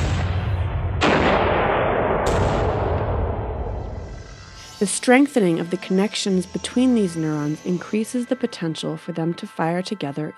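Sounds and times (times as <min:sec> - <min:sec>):
row of cannons firing: 0:00.0 - 0:04.1
speech: 0:04.8 - 0:10.3.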